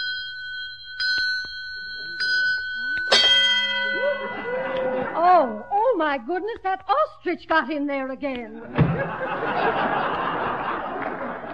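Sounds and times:
small bell on an automatic egg-counting device on a farm ringing: 0.0s - 6.1s
laughter: 3.8s - 5.5s, 8.5s - 11.5s
speech: 5.4s - 10.2s.

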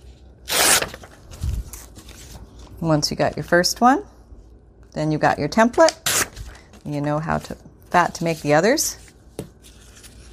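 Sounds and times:
material torn along a tearing ruler: 0.5s - 1.0s
speech: 2.8s - 4.1s, 5.0s - 6.0s, 6.9s - 9.0s.

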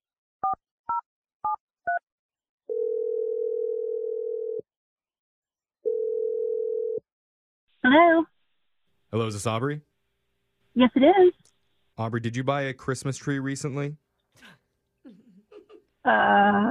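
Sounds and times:
long low-pitched telephone ringback tones: 2.7s - 4.6s, 5.9s - 7.0s
speech: 7.9s - 8.3s, 9.1s - 9.9s, 10.8s - 14.6s, 16.0s - 16.6s.

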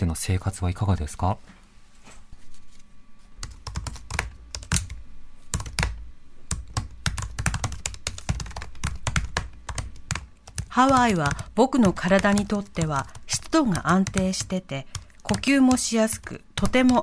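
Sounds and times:
speech: 0.0s - 1.6s, 10.8s - 17.0s
fast typing on a keyboard: 3.4s - 17.0s.

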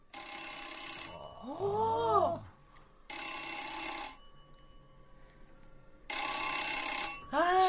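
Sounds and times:
old telephone bell ringing triggered through a modular jack: 0.1s - 1.5s, 3.1s - 5.2s, 6.1s - 7.4s
person speaking: 1.1s - 2.5s.

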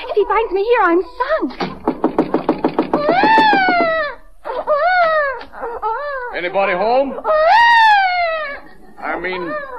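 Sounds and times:
speech: 0.2s - 1.8s, 6.4s - 7.7s, 9.2s - 9.7s
baby left alone in a house crying: 2.9s - 9.7s.

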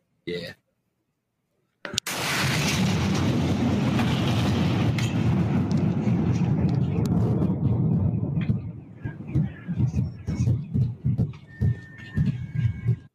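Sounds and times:
loud meteor blast: 2.0s - 10.3s
scattered bursts of noise: 2.0s - 13.1s
long roaring rumble: 2.4s - 13.1s
car alarms wailing faintly: 11.3s - 13.1s.

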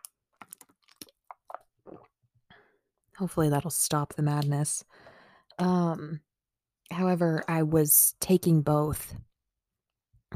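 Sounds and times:
person sipping water and swallowing: 0.4s - 2.2s
speech: 3.2s - 6.3s, 6.9s - 9.3s.

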